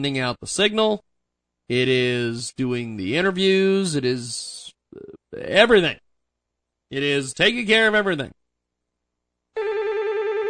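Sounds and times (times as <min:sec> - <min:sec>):
speech: 0:00.0 - 0:01.1, 0:01.7 - 0:06.0, 0:06.9 - 0:08.4
telephone ringing with a bright electronic trill: 0:09.6 - 0:10.4.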